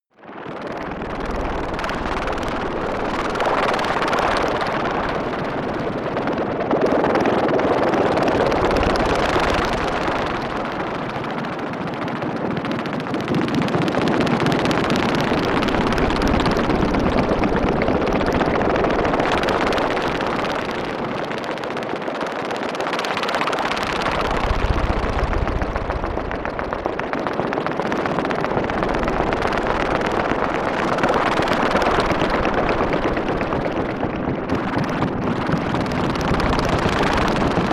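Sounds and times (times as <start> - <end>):
helicopter atmosphere: 0.1 - 37.7.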